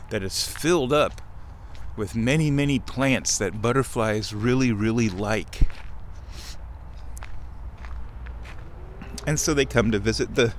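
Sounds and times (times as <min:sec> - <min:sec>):
speech: 0:00.1 - 0:01.3, 0:02.0 - 0:06.4, 0:09.3 - 0:10.5
soft footsteps walking across a land bridge over a billabong: 0:00.4 - 0:02.0, 0:04.4 - 0:10.0.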